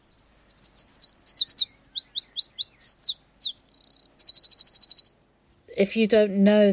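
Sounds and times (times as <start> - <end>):
wren singing: 0.0 - 5.2
speech: 5.8 - 6.7.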